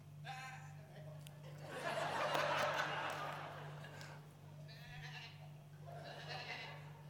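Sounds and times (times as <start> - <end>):
laughter: 1.4 - 4.2, 5.8 - 7.0
person imitating goat bleats: 4.7 - 7.0.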